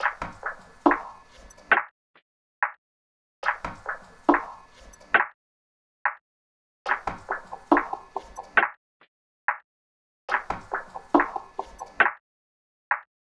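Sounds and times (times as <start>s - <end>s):
walking percussion loop: 0.0s - 1.8s, 3.4s - 5.2s, 6.9s - 8.6s, 10.3s - 12.1s.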